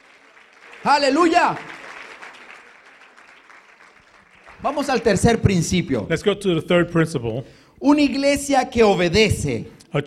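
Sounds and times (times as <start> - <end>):
church audience applause: 0.0 - 5.8
speech: 0.8 - 1.7, 4.6 - 10.0.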